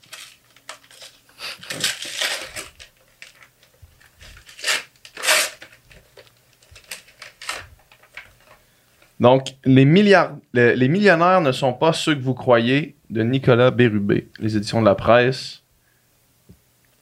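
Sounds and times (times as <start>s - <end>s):
gift wrapping paper being torn open: 0.0s - 8.6s
speech: 9.2s - 15.6s.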